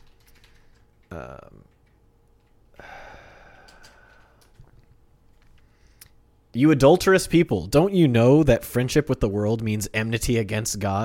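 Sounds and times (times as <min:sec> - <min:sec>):
typing on a computer keyboard: 0:00.0 - 0:02.6, 0:03.5 - 0:04.8
speech: 0:01.1 - 0:01.8, 0:06.5 - 0:11.0.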